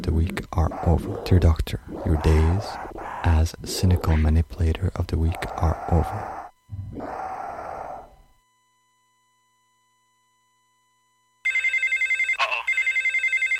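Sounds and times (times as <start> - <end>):
speech: 0.0 - 6.4
person groaning in a strained voice: 0.5 - 4.4, 5.2 - 8.1
loud telephone bell with rapid trilling ring: 11.5 - 13.5.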